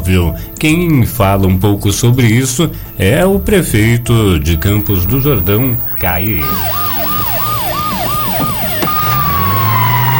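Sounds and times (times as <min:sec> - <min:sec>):
speech: 0:00.0 - 0:06.8
siren of a SAMU advanced life support ambulance yelping: 0:04.6 - 0:10.1.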